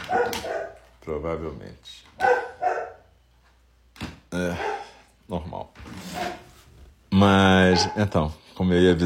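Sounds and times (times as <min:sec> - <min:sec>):
dog barking: 0:00.0 - 0:00.9, 0:02.2 - 0:03.1, 0:04.5 - 0:05.0, 0:07.6 - 0:08.2
speech: 0:01.1 - 0:02.7, 0:04.3 - 0:06.3, 0:07.2 - 0:09.0.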